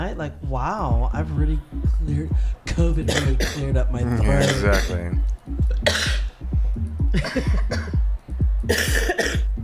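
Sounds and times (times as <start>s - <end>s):
speech: 0.0s - 6.2s, 7.1s - 8.1s, 8.7s - 9.4s
recorded wet, sloppy hacking coughs played as sound drops: 3.0s - 5.1s, 5.7s - 6.4s, 7.1s - 8.0s, 8.7s - 9.5s.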